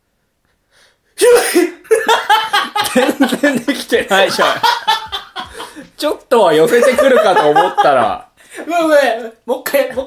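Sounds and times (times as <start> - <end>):
deliberately forced sneeze: 1.2 - 1.8
laughter: 1.9 - 8.3
speech: 3.2 - 4.9, 6.0 - 10.0.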